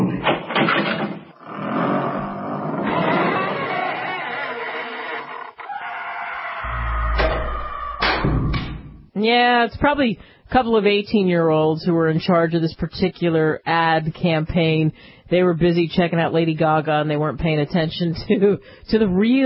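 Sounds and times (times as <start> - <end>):
heavy dungeon door creaking open: 0.1 - 9.0
deep rumbling thud of heavy dungeon door: 6.7 - 9.1
speech: 9.3 - 19.4.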